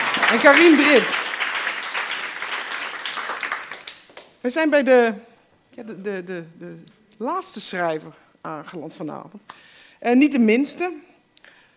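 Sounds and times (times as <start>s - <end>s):
audience applauding: 0.0s - 4.3s
speech: 0.3s - 1.2s, 4.4s - 11.1s.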